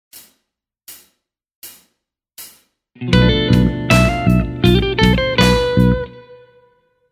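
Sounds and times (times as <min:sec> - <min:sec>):
Locrian mode lick: 0:03.0 - 0:06.2.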